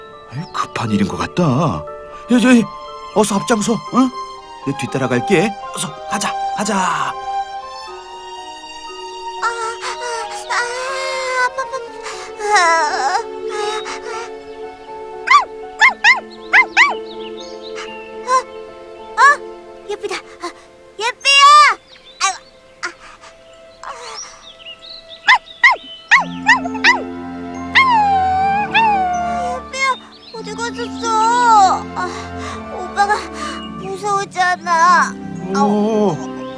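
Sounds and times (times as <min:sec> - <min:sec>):
busy musical background: 0:00.0 - 0:36.5
speech: 0:00.3 - 0:07.3, 0:12.6 - 0:13.1
dog barking urgently: 0:15.3 - 0:17.0, 0:25.3 - 0:27.1
dog whimpering and yipping: 0:15.3 - 0:17.0, 0:25.3 - 0:27.1, 0:27.7 - 0:29.7.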